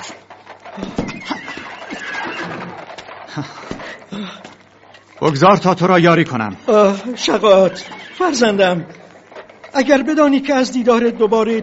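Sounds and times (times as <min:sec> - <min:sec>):
horse hoof thuds: 0:00.0 - 0:04.0
horse neighing in a drawn-out whinny: 0:00.0 - 0:04.2, 0:06.6 - 0:09.7
speech: 0:03.4 - 0:03.6, 0:05.2 - 0:09.0, 0:09.8 - 0:11.6.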